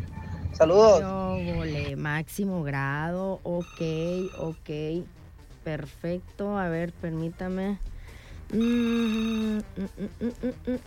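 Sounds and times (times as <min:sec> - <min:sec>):
speech: 0:00.6 - 0:07.9, 0:08.5 - 0:10.8
short evenly spaced telephone beeps: 0:03.6 - 0:04.6, 0:08.6 - 0:09.6
telephone ringing as a call comes in: 0:03.6 - 0:04.6, 0:08.6 - 0:09.6.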